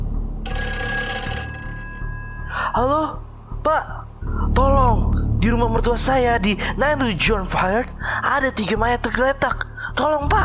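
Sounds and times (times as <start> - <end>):
telephone bell ringing in a house: 0.5 - 3.1
speech: 2.8 - 10.4.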